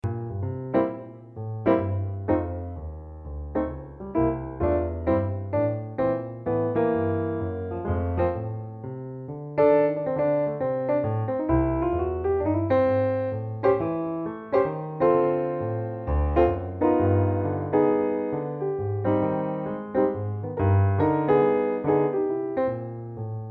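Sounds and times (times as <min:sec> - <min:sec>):
solo piano blues improvisation: 0:00.0 - 0:23.5.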